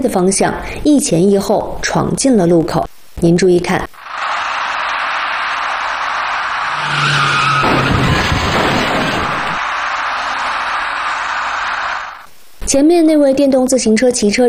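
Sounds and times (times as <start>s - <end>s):
speech: 0.0s - 4.0s, 12.7s - 14.4s
road noise: 4.0s - 12.3s
white minivan tires screeching while braking at a city intersection: 4.0s - 12.3s.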